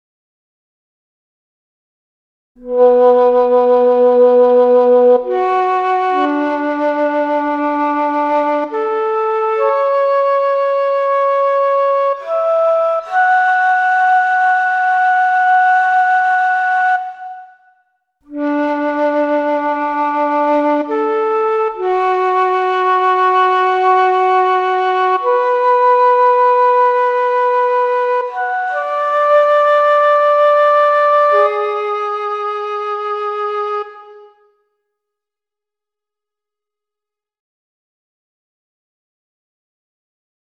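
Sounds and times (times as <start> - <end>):
flute intro: 2.6 - 34.7.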